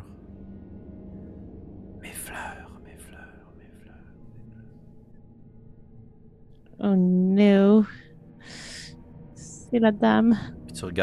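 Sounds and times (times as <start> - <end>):
breathy eerie whisper: 0.0 - 0.3, 2.0 - 4.8, 6.8 - 11.0
low ambient hum: 0.0 - 11.0
speech: 6.8 - 8.0, 9.7 - 11.0.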